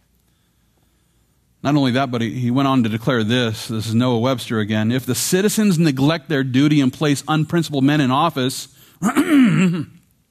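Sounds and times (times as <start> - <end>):
speech: 1.6 - 10.0
man clearing throat: 9.0 - 10.1.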